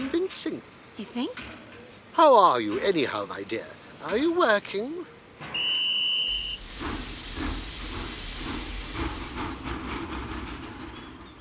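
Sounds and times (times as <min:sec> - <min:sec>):
speech: 0:01.2 - 0:05.5
old steam train whistle: 0:05.5 - 0:09.4
old steam train hissing as it pulls into a tiny halt: 0:06.3 - 0:11.4
rhythmic clatter of steam train wheels: 0:06.3 - 0:11.4.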